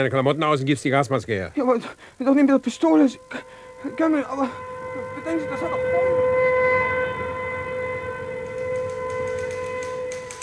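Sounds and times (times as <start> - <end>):
speech: 0.0 - 6.2
air raid siren wailing: 2.2 - 10.4.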